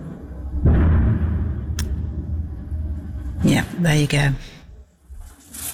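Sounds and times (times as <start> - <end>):
missile explosion bang rolling into a long low rumble: 0.6 - 2.6
speech: 3.5 - 4.5.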